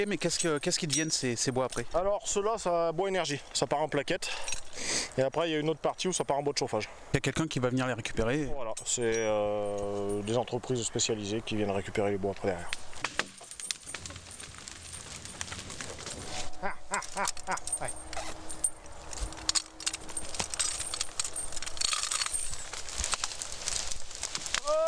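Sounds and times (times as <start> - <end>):
light metallic jingling like harness or tack: 0.0 - 2.2, 8.7 - 24.1
speech: 0.0 - 12.8
horse munching on leaves during a break: 12.8 - 24.8.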